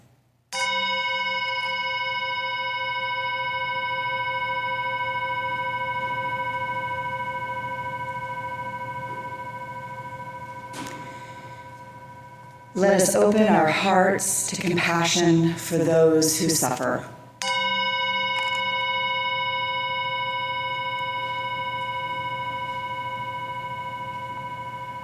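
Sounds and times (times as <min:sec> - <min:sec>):
chime ringing: 0:00.6 - 0:14.3, 0:17.4 - 0:25.0
speech: 0:12.8 - 0:17.1.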